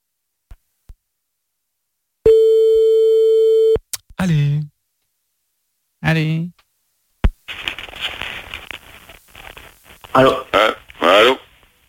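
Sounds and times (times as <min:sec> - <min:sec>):
steady single-pitch telephone line tone while a call is placed: 0:02.3 - 0:03.8
speech: 0:04.2 - 0:04.6, 0:06.1 - 0:06.5, 0:10.2 - 0:10.4.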